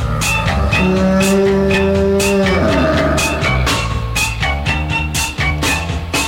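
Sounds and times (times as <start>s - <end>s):
cow mooing: 0.0s - 3.9s
loud bouncy musical backing with steady drums: 0.0s - 6.2s.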